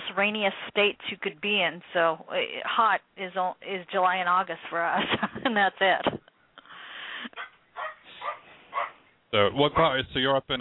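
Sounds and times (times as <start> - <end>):
speech: 0.2 - 6.2, 9.3 - 10.5
16-year-old dog barking in Washington State: 7.4 - 9.1.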